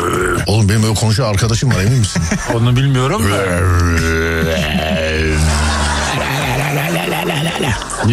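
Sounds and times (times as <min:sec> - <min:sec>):
man growling and grunting in a deep rough voice: 0:00.0 - 0:00.5, 0:02.9 - 0:07.7
speech: 0:00.5 - 0:06.0, 0:06.8 - 0:08.1
laughter: 0:01.5 - 0:08.1.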